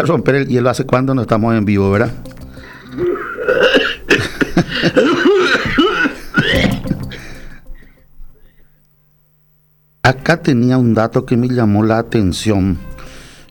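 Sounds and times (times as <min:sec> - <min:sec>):
speech: 0:00.0 - 0:02.3, 0:04.6 - 0:05.4, 0:10.1 - 0:12.9
person clearing throat before going on air: 0:02.9 - 0:07.8.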